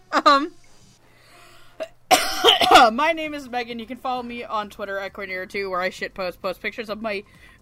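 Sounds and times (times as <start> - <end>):
speech: 0.2 - 0.6, 2.8 - 7.5
person coughing loudly and raspily: 1.8 - 3.0.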